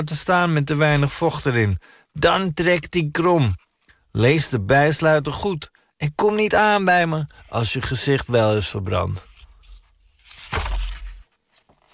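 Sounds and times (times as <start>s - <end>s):
speech: 0.0s - 3.6s, 4.2s - 9.3s
book page being turned: 9.2s - 11.9s.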